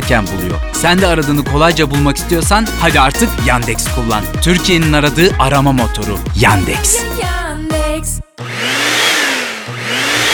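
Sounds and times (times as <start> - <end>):
speech: 0.1 - 7.4
short tonal musical burst: 6.4 - 7.2
vacuum cleaner roaring with motor hum and rising whine: 8.4 - 10.3.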